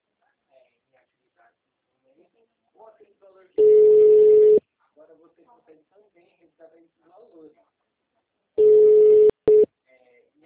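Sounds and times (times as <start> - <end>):
telephone tones as a call is placed after a dropped line: 3.6 - 4.6, 8.6 - 9.7
speech: 5.0 - 7.8.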